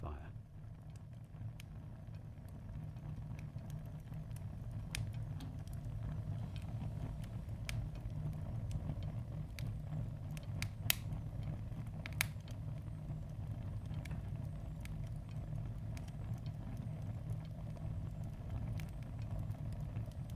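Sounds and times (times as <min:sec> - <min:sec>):
log fire roaring low in an old farmhouse kitchen: 0:00.0 - 0:20.3.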